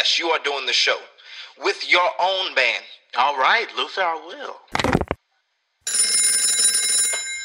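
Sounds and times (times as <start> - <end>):
speech: 0.0 - 5.0
telephone bell ringing: 5.9 - 7.4.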